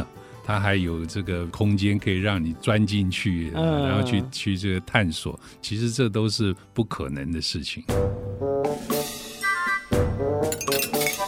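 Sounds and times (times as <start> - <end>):
speech: 0.5 - 8.9
glass breaking: 10.5 - 11.2
glass objects rattling and clinking during an earthquake: 10.5 - 11.2.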